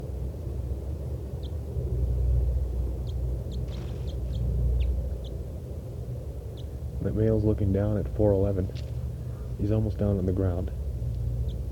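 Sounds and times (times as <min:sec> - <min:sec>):
steady low outdoor rumble: 0:00.0 - 0:11.7
caged bird giving short high chip-like flight calls beneath a lodgepole pine: 0:03.0 - 0:05.4
speech: 0:07.1 - 0:08.9, 0:09.6 - 0:10.8.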